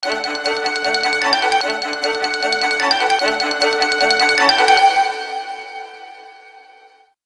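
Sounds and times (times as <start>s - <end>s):
classical Motorola Karma QA1 phone ringtone: 0.0s - 5.2s.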